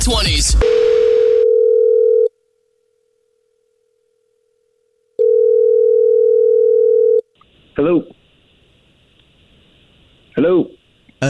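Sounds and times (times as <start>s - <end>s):
speech: 0.0s - 1.0s, 7.8s - 8.2s, 10.4s - 11.2s
buzzy telephone ring tone on the caller's end during a prank call: 0.6s - 2.3s, 5.2s - 7.2s.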